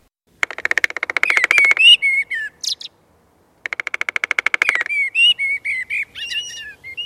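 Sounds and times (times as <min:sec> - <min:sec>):
great spotted woodpecker drumming: 0:00.3 - 0:02.8, 0:03.6 - 0:06.5
bright bird chirps: 0:00.5 - 0:03.0, 0:03.7 - 0:07.0.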